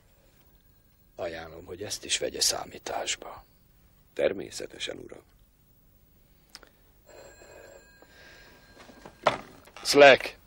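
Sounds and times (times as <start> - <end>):
speech: 1.2 - 3.6, 4.2 - 5.4, 9.9 - 10.4
telephone bell ringing for an incoming call: 7.0 - 9.9.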